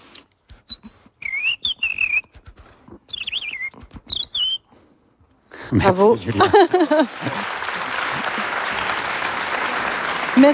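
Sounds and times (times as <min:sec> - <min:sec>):
person whistling an imitation of a European robin's song: 0:00.5 - 0:04.8
laughter: 0:05.6 - 0:10.5
speech: 0:05.7 - 0:07.5, 0:10.4 - 0:10.5.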